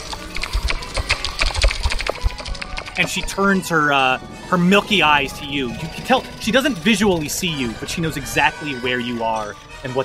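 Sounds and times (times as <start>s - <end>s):
voice imitating a creature's loud clicking: 0.0s - 3.2s
speech: 3.0s - 10.0s.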